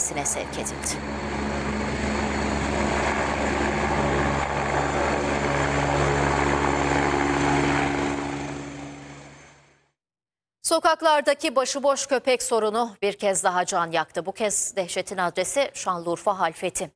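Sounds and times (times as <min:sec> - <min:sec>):
ambulance helicopter rotor and engine roar landing in hospital grounds: 0:00.0 - 0:10.0
speech: 0:00.1 - 0:02.1, 0:10.7 - 0:16.9.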